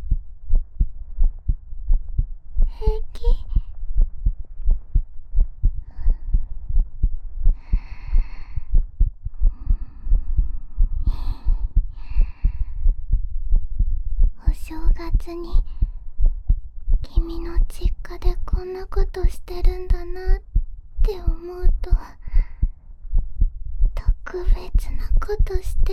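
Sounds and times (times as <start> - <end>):
pounding heartbeat: 0.0 - 17.2, 20.3 - 21.1, 21.8 - 24.2
soft breaths: 0.1 - 17.7, 21.0 - 25.9
person whispering: 2.6 - 3.7, 14.4 - 15.9, 17.0 - 20.4, 21.0 - 22.6, 24.0 - 25.9
speech: 15.3 - 15.7.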